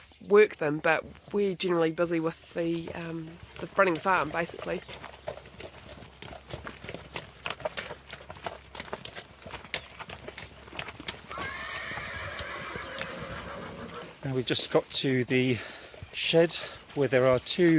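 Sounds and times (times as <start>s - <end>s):
working farm horses' hooves clip-clopping on a hard surface: 0.0s - 17.7s
speech: 0.3s - 5.1s, 14.3s - 17.7s
horse whinnying: 11.3s - 14.2s.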